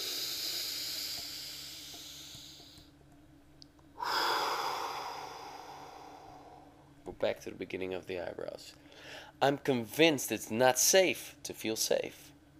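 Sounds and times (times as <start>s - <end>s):
deep breath in during a guided anxiety tapping exercise: 0.0s - 2.9s, 4.0s - 6.8s, 8.8s - 9.4s
steady hissy breathing during a guided anxiety tapping exercise: 0.0s - 2.9s, 4.0s - 6.9s, 8.7s - 9.4s
speech: 7.2s - 12.3s.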